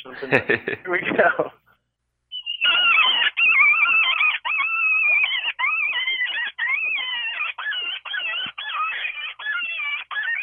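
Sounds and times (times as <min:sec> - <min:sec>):
speech: 0:00.0 - 0:01.6
hand-blown bite-down predator call squalling: 0:02.3 - 0:10.4.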